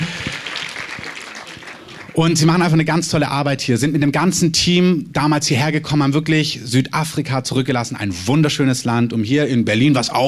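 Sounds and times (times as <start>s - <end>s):
crowd applauding: 0.0s - 2.4s
speech: 2.2s - 10.2s.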